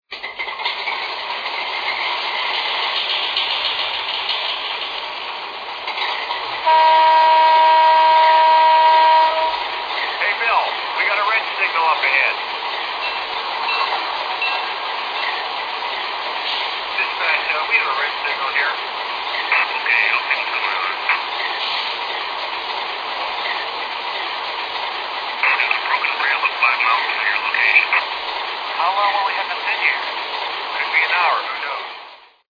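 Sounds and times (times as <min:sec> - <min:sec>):
Alco FA1 diesel locomotive: 0:00.1 - 0:32.4.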